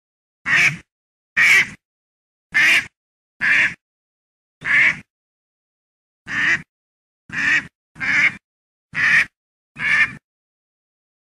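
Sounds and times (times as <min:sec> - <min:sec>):
duck quacking: 0:00.5 - 0:01.8, 0:02.5 - 0:03.8, 0:04.6 - 0:05.1, 0:06.3 - 0:06.7, 0:07.3 - 0:10.2.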